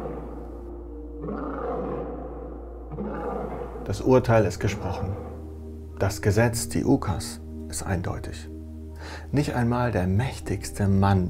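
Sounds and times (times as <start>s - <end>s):
lions roaring and growling: 0.0s - 4.1s, 4.7s - 5.4s
speech: 3.9s - 5.3s, 6.0s - 11.2s.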